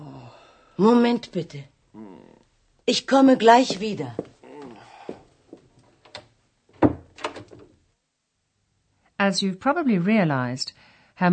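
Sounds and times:
speech: 0.8 - 1.7, 2.9 - 4.2, 9.3 - 11.3
murmured voice sounds: 2.0 - 2.5, 3.7 - 5.2
faint shuffling: 3.1 - 6.0
door opening with a sharp thud and rattle: 6.1 - 7.7.

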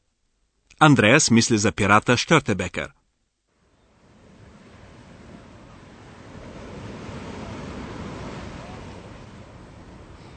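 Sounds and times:
speech: 0.8 - 3.0
sea waves crashing below coastal cliffs and rocks: 3.5 - 10.3
wind across microphone: 3.6 - 10.3.

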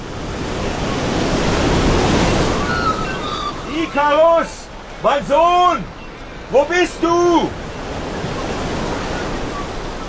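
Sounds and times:
sea waves washing in: 0.0 - 10.0
speech: 3.9 - 7.6.

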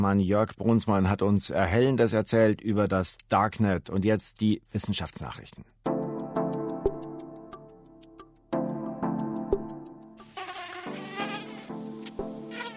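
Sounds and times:
speech: 0.0 - 5.8
faint regular ticking: 0.0 - 8.6
mosquito high-pitched whine: 10.2 - 12.7
rougher busier buzz: 10.4 - 12.7.

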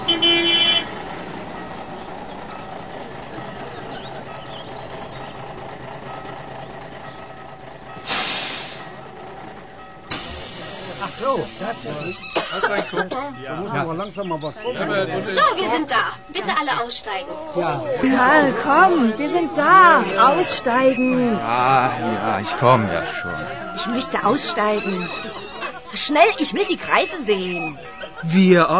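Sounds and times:
tourist bus rumbling: 0.0 - 28.7
voices chattering: 0.0 - 28.7
bus air hiss on halting: 8.0 - 9.0, 10.1 - 12.3
laughter: 10.4 - 28.7
speech: 11.4 - 28.7.

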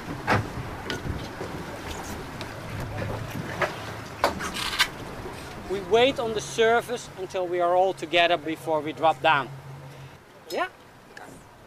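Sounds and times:
knocks and splashes against the hull of a small boat: 0.0 - 6.9
steady wind at sea: 0.0 - 11.6
water noise at sea: 0.0 - 11.6
speech: 5.9 - 9.6, 10.5 - 10.8.

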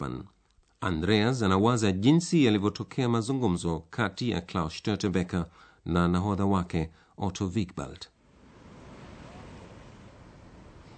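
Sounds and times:
speech: 0.0 - 8.1
faint wind rush: 8.2 - 10.9
sea surf washing against a rocky shore: 8.2 - 10.9.

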